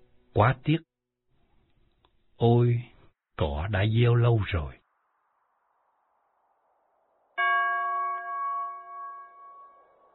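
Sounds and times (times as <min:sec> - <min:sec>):
speech: 0:00.4 - 0:00.9, 0:02.4 - 0:04.8
meditation bell in a Zen garden ringing: 0:07.4 - 0:10.1.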